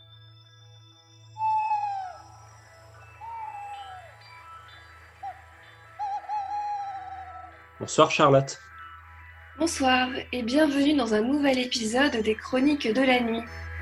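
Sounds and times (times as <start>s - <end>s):
tawny owl hooting at nightfall: 1.4s - 8.3s, 12.9s - 13.8s
speech: 7.8s - 8.7s, 9.6s - 13.6s.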